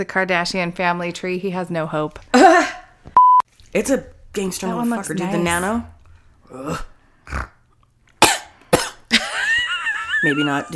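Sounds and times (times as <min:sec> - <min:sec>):
speech: 0:00.0 - 0:02.8, 0:03.7 - 0:05.9, 0:06.5 - 0:07.5, 0:10.2 - 0:10.7
soft breathy sound: 0:06.0 - 0:07.6
harsh coughs after choking while snorting: 0:08.2 - 0:09.4
laughter: 0:09.1 - 0:10.7.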